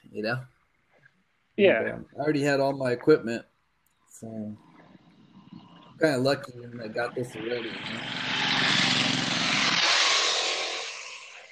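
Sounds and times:
speech: 0:00.2 - 0:00.6, 0:01.6 - 0:03.5, 0:04.1 - 0:04.7, 0:06.0 - 0:08.7
motorcycles passing by: 0:04.6 - 0:11.5.

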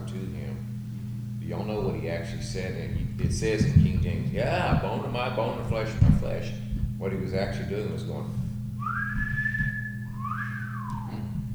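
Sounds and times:
low steady hum: 0:00.0 - 0:11.5
speech: 0:01.5 - 0:08.4
person imitating wolf whistle: 0:08.8 - 0:11.5.

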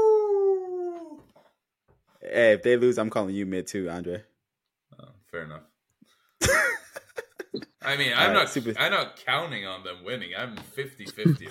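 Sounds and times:
person howling like a wolf: 0:00.0 - 0:01.2
speech: 0:02.4 - 0:04.3, 0:07.8 - 0:11.4.

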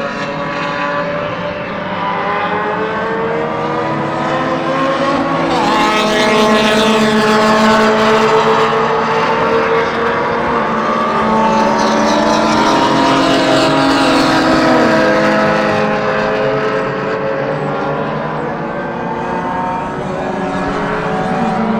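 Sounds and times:
loud race cars passing on a track: 0:00.0 - 0:21.7.

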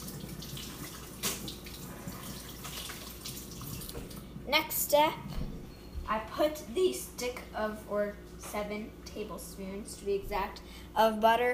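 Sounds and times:
tap water running while rinsing hands: 0:00.0 - 0:04.3
speech: 0:04.5 - 0:05.3, 0:06.1 - 0:11.5.

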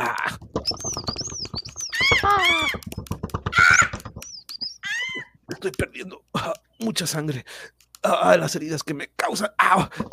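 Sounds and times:
several attacking birds cawing and screeching: 0:00.0 - 0:05.4
wing beats: 0:00.4 - 0:05.1
speech: 0:05.7 - 0:10.1.

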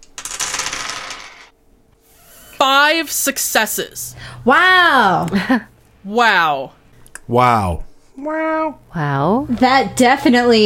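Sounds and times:
tabletop game dice clattering across a hard tabletop: 0:00.0 - 0:01.5
speech: 0:02.9 - 0:10.6.

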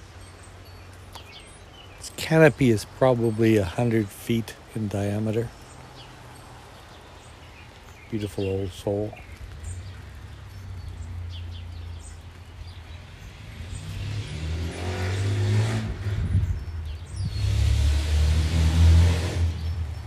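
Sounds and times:
birds chirping faintly: 0:00.0 - 0:18.4
speech: 0:02.2 - 0:05.6, 0:08.1 - 0:09.3
old pickup truck engine without muffler revving: 0:13.2 - 0:20.0.

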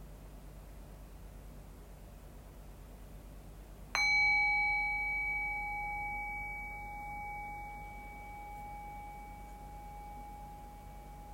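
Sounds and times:
meditation bell ringing: 0:04.0 - 0:11.3.

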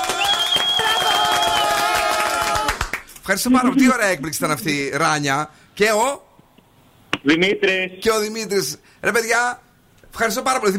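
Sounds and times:
people cheering: 0:00.0 - 0:03.0
applause from a group: 0:00.0 - 0:03.4
speech: 0:03.3 - 0:06.3, 0:07.2 - 0:10.7.

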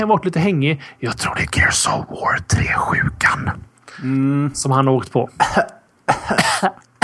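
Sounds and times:
speech: 0:00.0 - 0:06.8
person with a cold coughing: 0:05.4 - 0:07.0.

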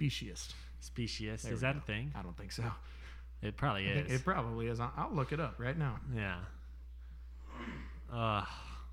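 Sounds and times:
speech: 0:00.0 - 0:06.6, 0:07.5 - 0:08.7
single short gravelly throat clear: 0:07.4 - 0:08.1.

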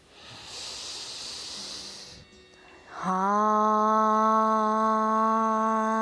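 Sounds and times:
long deep breath drawn in through the nose: 0:00.0 - 0:02.8
loud sustained low chanted hum: 0:01.0 - 0:05.9.

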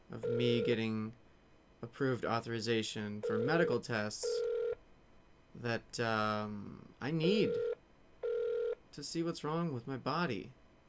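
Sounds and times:
speech: 0:00.1 - 0:01.2, 0:01.8 - 0:04.5, 0:05.6 - 0:07.7, 0:09.0 - 0:10.6
electronic telephone tone from a call on hold: 0:00.2 - 0:00.8, 0:03.2 - 0:04.8, 0:07.2 - 0:08.8.

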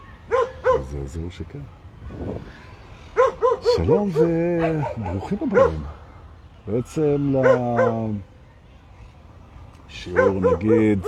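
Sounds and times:
dog barking at a dog park: 0:00.3 - 0:01.0, 0:03.2 - 0:05.9, 0:07.4 - 0:08.1, 0:10.1 - 0:11.0
speech: 0:00.9 - 0:02.7, 0:03.7 - 0:06.0, 0:06.6 - 0:08.3, 0:10.0 - 0:11.0.

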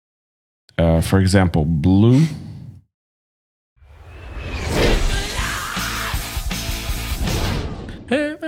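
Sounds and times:
speech: 0:00.8 - 0:02.4, 0:08.1 - 0:08.3
loud rock music as a stream alert: 0:05.1 - 0:07.9.

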